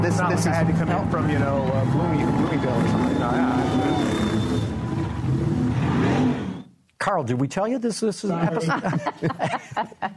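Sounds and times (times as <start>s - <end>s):
speech: 0.0s - 4.2s, 7.0s - 10.1s
car engine rumbling with a faint whine: 0.0s - 6.6s
laughter: 8.3s - 10.1s.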